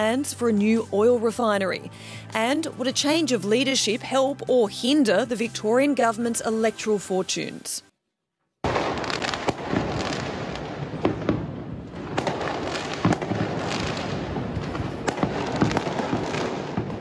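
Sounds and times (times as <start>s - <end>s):
speech: 0.0s - 7.9s
fireworks exploding outdoors: 8.6s - 16.9s.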